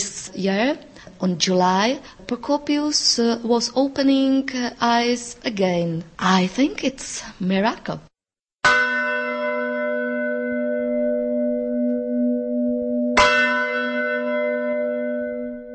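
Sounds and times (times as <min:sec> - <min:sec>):
speech: 0:00.4 - 0:08.1
church bell strikes from Gothic bell tower: 0:08.6 - 0:15.7.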